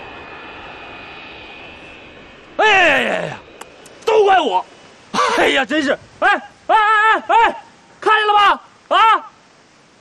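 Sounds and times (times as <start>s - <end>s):
airliner flying low overhead: 0.0s - 7.4s
speech: 4.3s - 4.8s, 5.4s - 9.3s.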